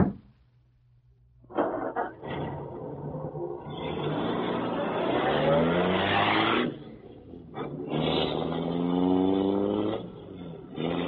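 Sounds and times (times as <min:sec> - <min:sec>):
car engine starting up and revving as the vehicle drives off: 0:02.2 - 0:11.0.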